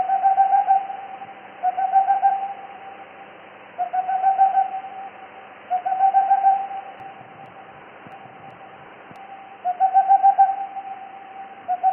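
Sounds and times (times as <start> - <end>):
boreal owl hooting: 0.0 - 3.0, 3.8 - 7.3, 9.2 - 11.9.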